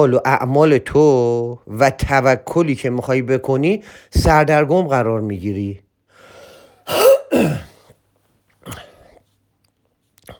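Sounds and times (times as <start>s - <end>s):
speech: 0.0s - 5.8s, 6.9s - 7.7s, 8.7s - 8.9s
harsh coughs from a person with asthma: 6.9s - 8.0s, 8.6s - 9.2s
throat clearing: 6.9s - 8.0s, 8.6s - 9.2s.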